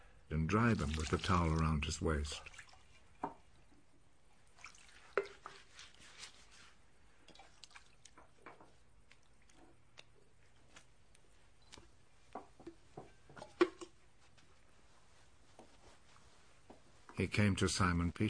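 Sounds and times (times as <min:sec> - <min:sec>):
speech: 0:00.3 - 0:02.6, 0:17.2 - 0:18.2
water splashing and dripping in a basin from feet washing: 0:00.6 - 0:03.5, 0:04.4 - 0:06.0, 0:07.3 - 0:08.4.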